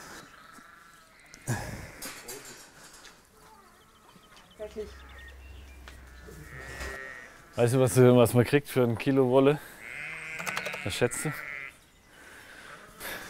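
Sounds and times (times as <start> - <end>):
speech: 4.7 - 5.1, 7.6 - 9.7, 10.8 - 11.5
sheep bleating: 6.0 - 7.7, 9.8 - 11.8.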